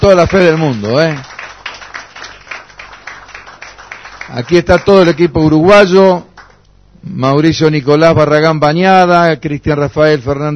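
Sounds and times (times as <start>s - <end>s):
speech: 0.0s - 1.4s, 4.3s - 6.3s, 7.0s - 10.5s
crowd clapping in farewell applause for boxers: 0.0s - 6.7s.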